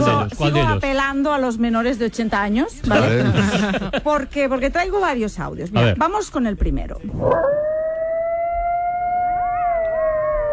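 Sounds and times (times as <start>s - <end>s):
speech: 0.1s - 7.7s
laughter: 2.8s - 4.3s
coyote howling in a long high-pitched note: 7.2s - 10.5s.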